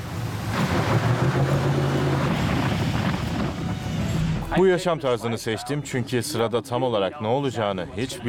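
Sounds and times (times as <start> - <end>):
rushing river water: 0.0 - 4.5
speedboat motor droning on a river: 0.0 - 4.6
wind buffeting the microphone: 0.7 - 4.2
speech: 4.5 - 8.2.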